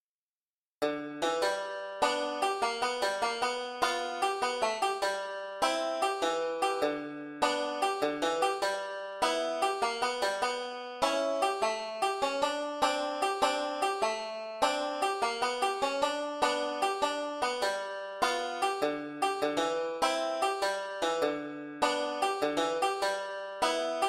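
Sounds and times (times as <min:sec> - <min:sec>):
five-string banjo solo playing blues licks: 0:00.8 - 0:24.0.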